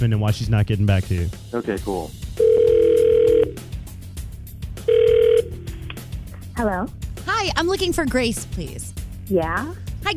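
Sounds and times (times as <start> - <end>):
speech: 0.0 - 2.4, 6.6 - 10.1
electronic ringback tone of an outgoing phone call: 2.4 - 3.6, 4.8 - 5.7.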